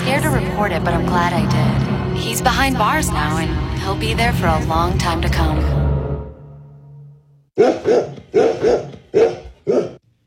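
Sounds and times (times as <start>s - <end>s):
low steady rumble: 0.0s - 7.5s
speech: 0.1s - 5.8s, 7.6s - 8.8s
golden retrievers barking: 7.6s - 10.0s.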